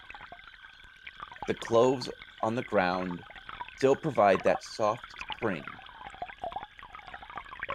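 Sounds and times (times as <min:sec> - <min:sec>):
water trickling and bubbling in a fountain: 0:00.0 - 0:07.7
speech: 0:01.5 - 0:05.8.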